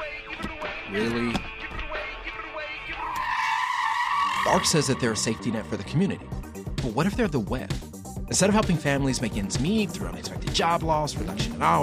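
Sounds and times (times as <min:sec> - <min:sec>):
speech: 0:00.9 - 0:01.5, 0:04.5 - 0:11.8
car tires skidding and squealing during reckless driving: 0:02.9 - 0:05.9.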